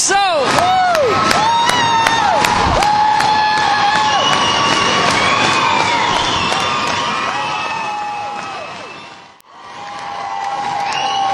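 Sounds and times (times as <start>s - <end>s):
large concert crowd cheering and shouting for an encore: 0.0s - 11.3s
speech: 0.1s - 0.6s
shrill whistles from a concert crowd: 3.9s - 9.4s, 10.7s - 11.3s.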